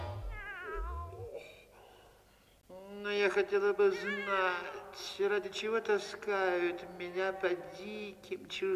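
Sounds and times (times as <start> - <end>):
cat purring: 0.2 - 1.5
speech: 3.3 - 8.7.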